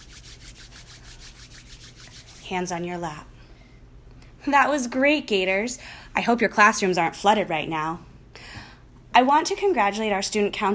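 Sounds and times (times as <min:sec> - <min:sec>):
palms rubbing together: 0:00.0 - 0:02.8
speech: 0:02.5 - 0:03.3, 0:04.4 - 0:08.1, 0:09.2 - 0:10.7.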